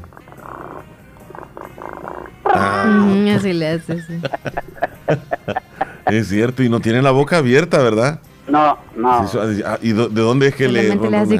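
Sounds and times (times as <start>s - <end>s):
person imitating a cat's purr: 0.0s - 3.5s
speech: 2.5s - 5.2s, 6.1s - 11.3s
laughter: 2.5s - 6.6s.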